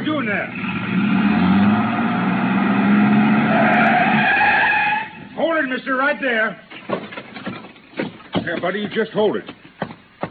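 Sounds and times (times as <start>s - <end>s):
truck engine rumbling: 0.0s - 5.6s
speech: 0.2s - 1.2s, 5.8s - 6.7s, 8.4s - 9.6s.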